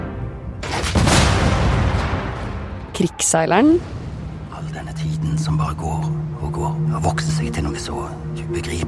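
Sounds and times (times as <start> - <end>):
low steady rumble: 0.2 - 8.8
cannon blast with rolling boom: 0.6 - 3.0
speech: 3.0 - 4.0, 5.3 - 8.8.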